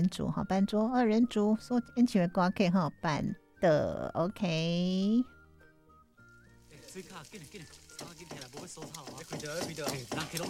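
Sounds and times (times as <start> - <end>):
speech: 0.0 - 5.4, 6.9 - 10.4
music-like tones: 0.4 - 10.4
hot oil sizzling: 6.2 - 10.4
vegetables being chopped: 7.4 - 10.4.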